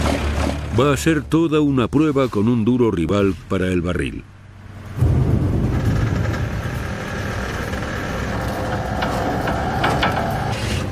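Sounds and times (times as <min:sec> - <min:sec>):
speech: 0:00.8 - 0:04.3
7-ton tractor engine straining under load while pulling away: 0:04.8 - 0:10.9
grinding clanking mechanical noise of the tractor: 0:04.9 - 0:10.9.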